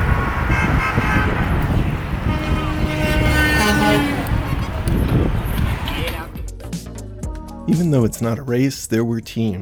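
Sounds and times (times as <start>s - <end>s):
car and truck horns honking under an overpass during a celebration: 0.0s - 6.2s
traffic passing under an overpass: 0.0s - 6.4s
loud busy crowd during a celebration: 1.8s - 6.4s
speech: 7.7s - 9.6s.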